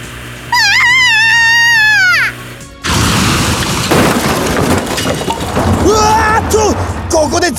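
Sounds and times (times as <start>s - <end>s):
video game electronic whine: 0.0s - 2.7s
video game car crash: 2.8s - 7.5s
speech: 6.6s - 7.5s.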